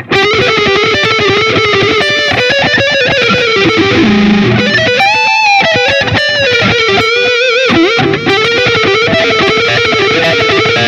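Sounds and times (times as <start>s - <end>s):
electric guitar lick through distortion on a modeled amplifier: 0.0s - 10.8s.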